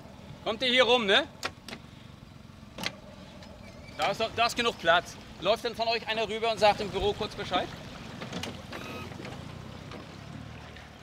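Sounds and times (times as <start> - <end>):
boat engine rumbling while manoeuvring into a harbour berth at Waren: 0.0 - 11.0
speech: 0.4 - 1.4, 4.0 - 8.3
water sloshing in a harbour at Waren: 2.9 - 11.0.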